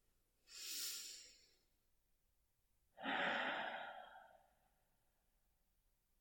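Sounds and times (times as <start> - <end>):
slow calm breathing during a guided relaxation exercise: 0.5 - 1.6, 3.0 - 4.6.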